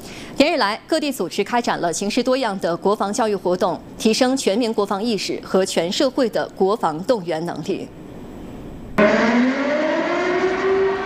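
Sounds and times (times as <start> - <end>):
speech: 0.4 - 8.0
air-raid siren wailing on a school campus in Anhui Province China during evacuation drill: 9.0 - 11.0.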